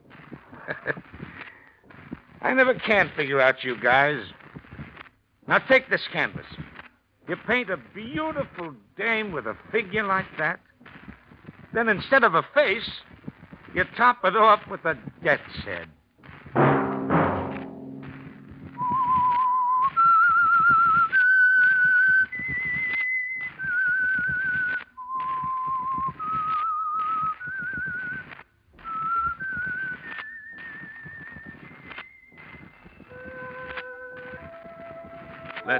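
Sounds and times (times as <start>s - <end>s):
laughter: 0.5s - 1.2s
speech: 0.8s - 1.2s, 2.4s - 4.4s, 5.5s - 6.6s, 7.3s - 10.7s, 11.7s - 13.1s, 13.7s - 16.6s
soft thump: 16.6s - 19.3s
lone whistled melody as a radio signal tune: 18.8s - 35.7s.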